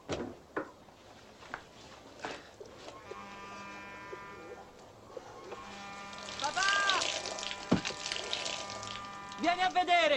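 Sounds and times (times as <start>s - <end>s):
water pouring out in a hissing stream instead of diesel: 6.0s - 9.5s
speech: 9.5s - 10.1s.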